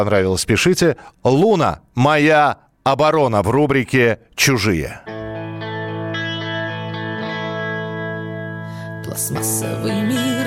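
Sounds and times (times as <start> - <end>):
speech: 0.0 - 5.2, 9.1 - 10.4
heavy rock band distorted electric guitar chords: 5.0 - 10.4.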